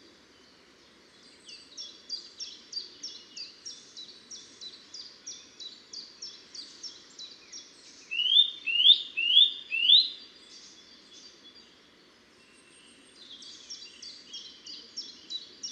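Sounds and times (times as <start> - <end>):
Eurasian nuthatch Sitta europaea calling: 8.1 - 10.2.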